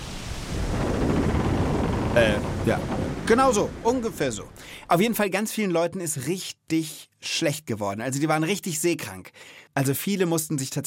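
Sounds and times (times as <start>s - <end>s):
stormy wind roaring: 0.0s - 4.9s
deep thunder rumbling: 0.0s - 5.2s
speech: 2.2s - 10.8s.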